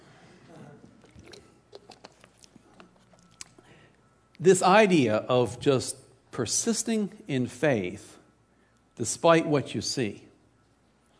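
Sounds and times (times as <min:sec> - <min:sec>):
small gulping sounds drinking spring water: 0:00.7 - 0:03.7
quiet wet mouth clicks while sipping spring water: 0:01.0 - 0:03.6
speech: 0:04.4 - 0:08.2, 0:09.0 - 0:10.3.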